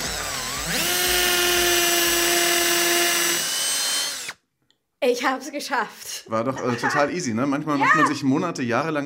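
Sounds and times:
cordless impact driver with 5 mm bit boring into hard wall tile: 0:00.0 - 0:04.4
speech: 0:05.1 - 0:09.0.

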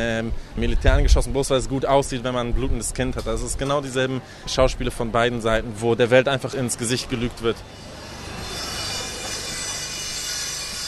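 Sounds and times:
speech: 0:00.0 - 0:07.9
construction site machinery grinding and whirring: 0:06.7 - 0:10.8.

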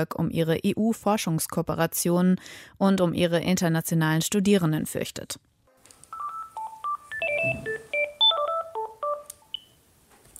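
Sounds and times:
speech: 0:00.0 - 0:05.5
telephone keypad tones: 0:06.1 - 0:09.7.

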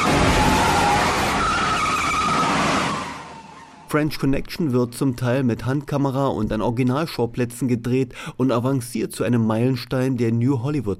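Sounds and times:
car tires skidding and squealing during chase scene: 0:00.0 - 0:03.9
speech: 0:03.9 - 0:10.9.

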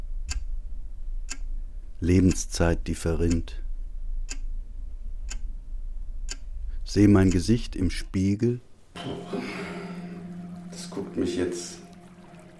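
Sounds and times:
low hum: 0:00.0 - 0:12.5
clock ticking with crisp clicks: 0:00.2 - 0:00.6, 0:01.2 - 0:01.6, 0:02.2 - 0:03.6, 0:04.2 - 0:04.6, 0:05.2 - 0:05.6, 0:06.2 - 0:07.7
speech: 0:02.0 - 0:03.6, 0:06.9 - 0:09.7, 0:10.8 - 0:11.8.

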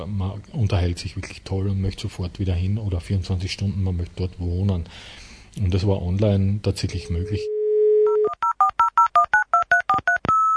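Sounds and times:
speech: 0:00.0 - 0:07.6
dial-up modem dial tone: 0:07.2 - 0:10.5.

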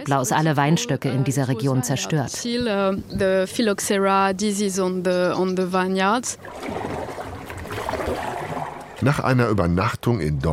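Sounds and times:
speech: 0:00.0 - 0:07.2, 0:09.0 - 0:10.5
canoe paddles pulling through a slow river: 0:06.1 - 0:09.2.

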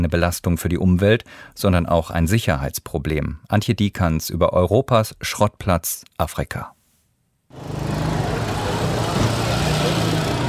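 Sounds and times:
speech: 0:00.0 - 0:06.8
engines idling and rumbling: 0:07.5 - 0:10.4
street traffic at a busy intersection: 0:07.5 - 0:10.4.

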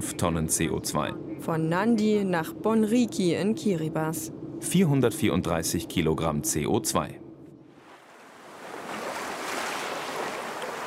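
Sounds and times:
speech: 0:00.0 - 0:07.2
surf from turquoise sea washing onto lagoon shore in Tarawa Kiribati: 0:07.8 - 0:10.8.

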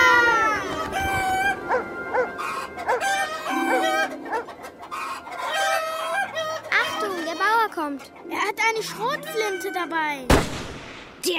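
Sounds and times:
rooster crowing: 0:00.1 - 0:06.6
flock of chickens clucking: 0:00.5 - 0:10.3
faint farmyard murmur: 0:00.7 - 0:10.2
speech: 0:08.8 - 0:11.3.

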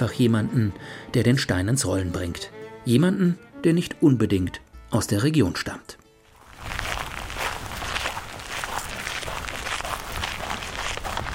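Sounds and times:
speech: 0:00.0 - 0:06.0
footsteps walking along a path on a rural property in Portugal: 0:06.2 - 0:11.3.

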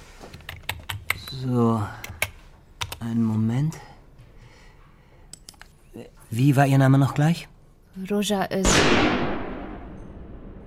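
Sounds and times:
speech: 0:01.3 - 0:02.1, 0:03.0 - 0:03.9, 0:06.0 - 0:09.3
rumbling echo of gunshot: 0:08.7 - 0:10.6
single loud gunshot: 0:08.7 - 0:10.6.

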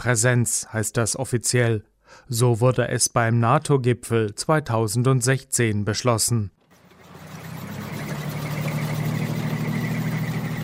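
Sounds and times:
speech: 0:00.0 - 0:06.6
Marder infantry fighting vehicle driving past during a military exercise in Lithuania: 0:06.6 - 0:10.6.

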